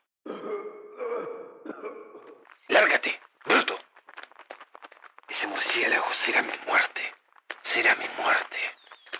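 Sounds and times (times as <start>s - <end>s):
man coughing in a rough voiced fit: 0.3s - 2.4s
speech: 2.6s - 3.2s, 5.8s - 6.9s, 7.8s - 8.5s.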